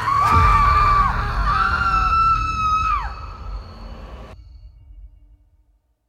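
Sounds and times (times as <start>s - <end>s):
several people screaming in horror: 0.0s - 4.4s
low rumble: 0.0s - 6.0s.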